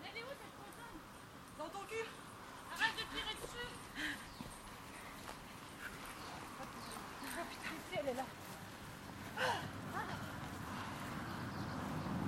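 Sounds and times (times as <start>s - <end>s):
street noise: 0.0s - 12.2s
footsteps of marathon runners in the street: 2.7s - 12.2s.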